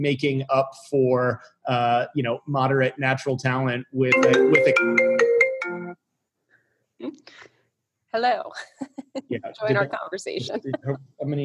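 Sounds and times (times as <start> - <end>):
laughter: 0.0 - 4.6, 9.3 - 11.4
speech: 0.0 - 6.1, 7.0 - 7.5, 8.1 - 11.4
short electronic mobile phone ringtone with bright melodic notes: 4.1 - 6.0.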